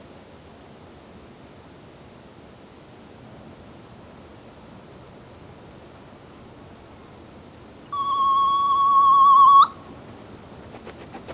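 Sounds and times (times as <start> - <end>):
soft-plumaged petrel Pterodroma mollis giving a long drawn-out whistle: 7.9 - 9.9.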